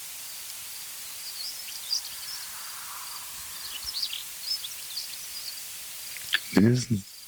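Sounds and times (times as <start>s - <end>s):
bird twitters: 0.9s - 7.2s
cricket chirping beside a field: 0.9s - 7.2s
person speaking: 6.2s - 7.0s.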